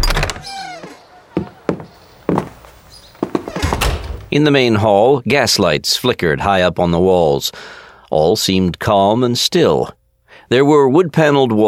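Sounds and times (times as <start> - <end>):
heavy door creaking open with knocks and thumps: 0.0 - 4.4
speech: 4.3 - 11.6.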